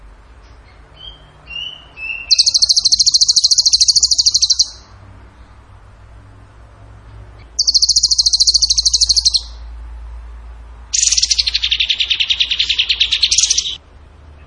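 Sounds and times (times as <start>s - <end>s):
bird singing a buzzing trill: 0.4s - 5.6s, 7.4s - 9.8s, 10.9s - 13.8s.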